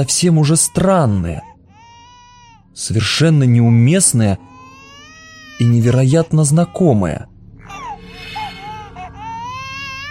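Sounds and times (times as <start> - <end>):
speech: 0.0 - 1.5, 2.8 - 4.6, 5.6 - 7.3
infant about a year old crying desperately at the other end of a ship: 0.0 - 3.2, 4.0 - 10.0
low hum: 0.0 - 10.0.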